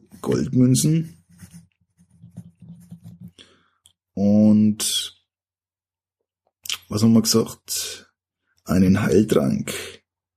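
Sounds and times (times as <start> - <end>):
pen scratching on paper while jotting notes: 0.0 - 3.4
speech: 0.3 - 1.2, 4.8 - 5.1, 6.9 - 8.1, 8.7 - 10.0.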